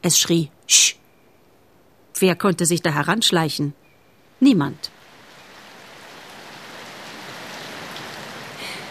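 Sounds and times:
speech: 0.0s - 1.0s, 2.2s - 3.8s, 4.4s - 5.0s
steady heavy rain pouring: 4.9s - 8.9s.

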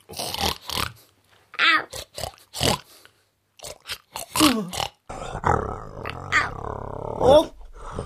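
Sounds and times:
pig grunting and snorting: 0.0s - 1.0s, 1.8s - 3.0s, 3.6s - 8.0s
speech: 4.6s - 4.9s, 7.3s - 7.6s.

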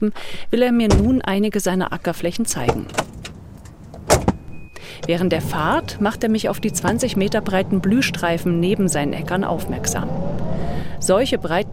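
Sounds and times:
speech: 0.0s - 3.1s, 5.0s - 11.7s
car doors closing with solid thumps: 0.9s - 1.2s, 2.6s - 5.2s.

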